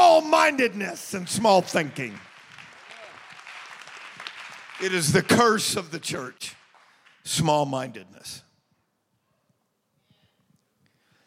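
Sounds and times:
speech: 0:00.2 - 0:02.3, 0:04.8 - 0:06.6, 0:07.2 - 0:08.4
audience clapping hands: 0:00.2 - 0:07.5.

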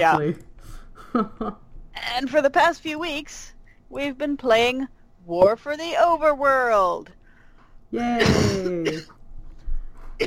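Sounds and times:
speech: 0:00.0 - 0:00.5, 0:01.1 - 0:07.2, 0:07.9 - 0:09.2
hoarse person coughing roughly: 0:08.0 - 0:09.1.

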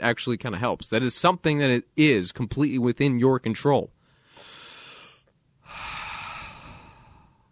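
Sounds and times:
speech: 0:00.0 - 0:04.0
slow deep breath in and out: 0:04.0 - 0:07.5.

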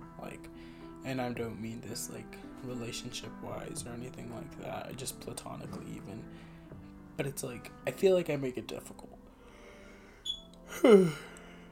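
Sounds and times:
speech: 0:00.4 - 0:06.6, 0:07.2 - 0:09.1, 0:10.7 - 0:11.3
person yawning with a voiced groan: 0:10.7 - 0:11.4.

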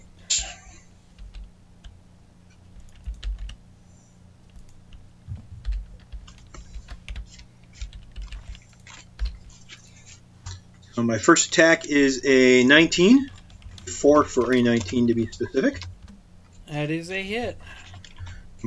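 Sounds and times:
low steady hum: 0:00.0 - 0:18.6
typing on a computer keyboard: 0:01.2 - 0:03.6, 0:04.4 - 0:10.6, 0:12.5 - 0:16.6, 0:17.8 - 0:18.4
speech: 0:11.0 - 0:13.3, 0:14.0 - 0:15.9, 0:16.8 - 0:17.8.

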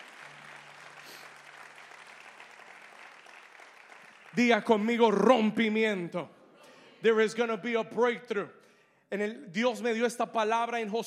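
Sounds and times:
large crowd applauding: 0:00.0 - 0:05.3
speech: 0:04.4 - 0:06.4, 0:07.0 - 0:11.0.

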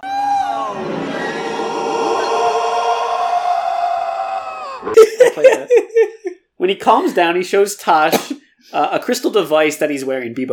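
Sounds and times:
crate dragon roar played back by a droid: 0:00.0 - 0:05.0
laughter: 0:04.9 - 0:06.4
speech: 0:05.4 - 0:10.5.

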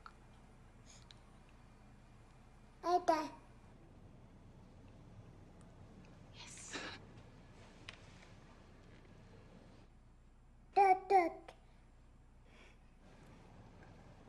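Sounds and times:
baby girl babbling over the phone: 0:02.9 - 0:03.4, 0:10.8 - 0:11.5.

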